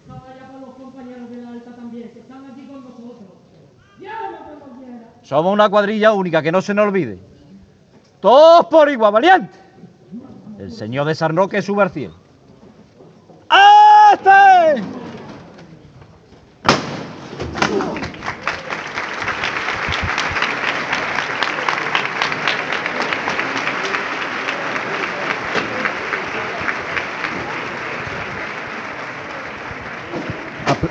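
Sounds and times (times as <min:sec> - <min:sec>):
speech: 0:05.2 - 0:07.3, 0:08.2 - 0:09.6, 0:10.6 - 0:12.2, 0:14.2 - 0:15.0
crowd applause outside and inside a church during a Palm Sunday procession: 0:17.6 - 0:30.8.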